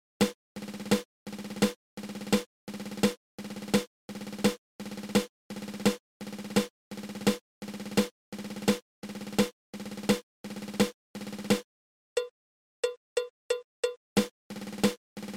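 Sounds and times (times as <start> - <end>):
seven stroke roll on drum: 0.2 - 11.6, 14.2 - 15.3.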